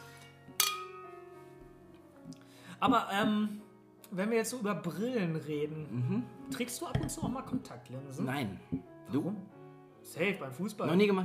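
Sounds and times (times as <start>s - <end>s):
speech: 2.3s - 11.2s
glasses clinking in a toast: 7.0s - 7.7s.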